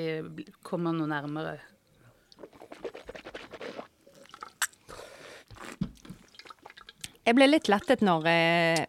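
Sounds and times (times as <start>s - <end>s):
speech: 0.0s - 1.8s, 7.3s - 8.8s
person sipping a drink to taste it: 2.3s - 7.2s.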